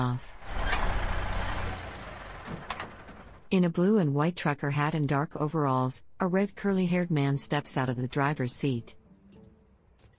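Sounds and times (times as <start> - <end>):
speech: 0.0 - 0.6, 3.5 - 9.0
truck engine rumbling through a truck stop yard at night: 0.0 - 3.5.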